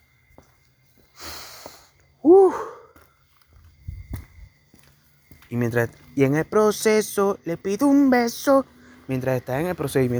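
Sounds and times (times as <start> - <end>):
person exhaling through the nose: 1.2 - 2.9
speech: 2.2 - 2.8, 5.5 - 10.1.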